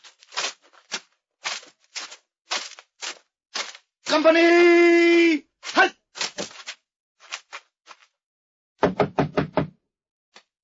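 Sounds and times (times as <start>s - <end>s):
heavy military jackboots of soldiers marching on snow-covered ground: 0.0s - 4.8s, 5.6s - 8.2s
speech: 4.1s - 5.9s.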